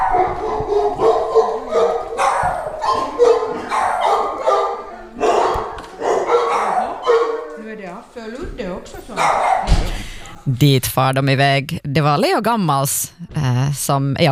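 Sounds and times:
high dog whines: 0.0s - 7.6s
two dogs barking and yipping excitedly at a dog boarding hotel: 0.0s - 7.9s, 9.0s - 9.9s
speech: 10.5s - 14.3s.

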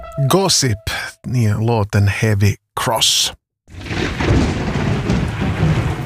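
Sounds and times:
speech: 0.3s - 4.5s
deep continuous thunder rumbling: 3.7s - 6.0s.

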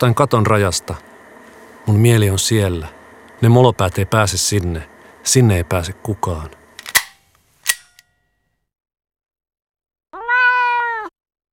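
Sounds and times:
speech: 0.0s - 1.1s, 1.8s - 6.6s
sharp snap: 6.8s - 8.1s
cat meowing: 10.1s - 11.1s.

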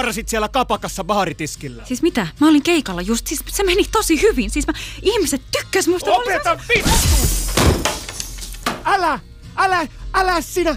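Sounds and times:
speech: 0.0s - 7.8s, 8.8s - 10.7s
glass table shattering: 6.8s - 8.9s.

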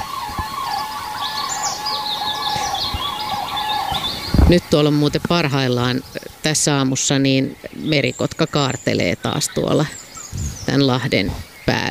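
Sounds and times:
European robin singing: 0.0s - 11.8s
moor frogs calling: 0.0s - 11.8s
steady outdoor hum: 0.0s - 11.8s
speech: 4.5s - 10.0s, 10.7s - 11.8s.

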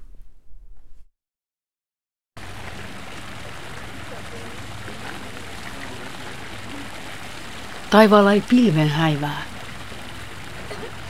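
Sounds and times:
water splashing in a garden fountain with goldfish: 2.4s - 11.0s
speech: 7.9s - 9.5s.

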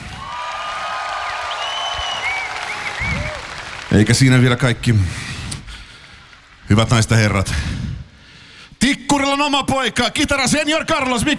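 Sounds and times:
audience applause at a summer concert: 0.0s - 5.1s
speech: 4.0s - 5.3s, 6.7s - 7.8s, 9.1s - 11.3s.

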